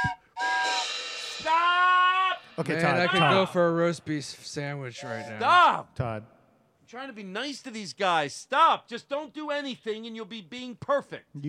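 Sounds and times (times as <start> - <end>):
duck call whistle blown: 0.0 - 3.4
speech: 2.6 - 11.4.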